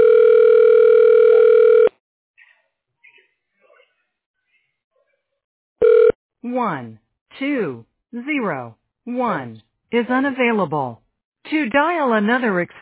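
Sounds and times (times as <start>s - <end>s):
telephone ringing tone while a call is forwarded: 0.0s - 1.9s, 5.8s - 6.2s
speech: 6.6s - 12.7s.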